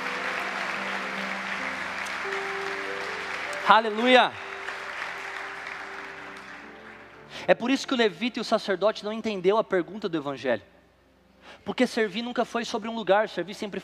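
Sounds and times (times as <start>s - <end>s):
audience applauding during a sermon: 0.0s - 7.4s
speech: 3.7s - 4.5s, 7.5s - 10.7s, 11.4s - 13.8s.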